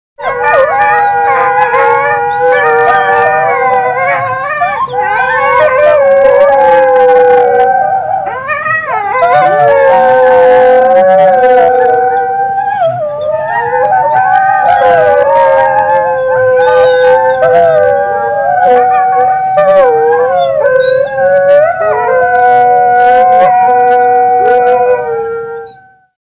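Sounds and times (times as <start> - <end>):
wolves: 0.2 - 26.2.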